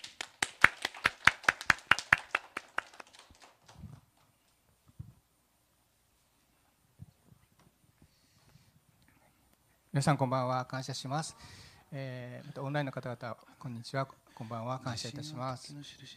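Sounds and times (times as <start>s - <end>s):
audience applause welcoming a speaker: 0.0s - 3.8s
speech: 10.0s - 16.1s.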